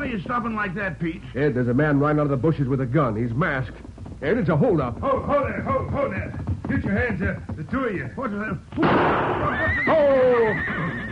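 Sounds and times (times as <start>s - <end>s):
speech: 0.1s - 10.9s
frightened carriage horse neighing during a roadside holdup: 9.2s - 11.1s.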